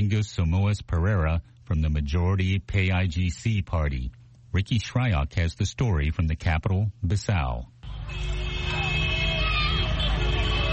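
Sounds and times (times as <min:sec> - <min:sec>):
busy street traffic roaring past in Bissau: 0:00.0 - 0:10.7
speech: 0:00.1 - 0:08.8
car horns blaring in long sustained tones: 0:07.8 - 0:10.7
murmur of crowd voices: 0:08.0 - 0:10.7.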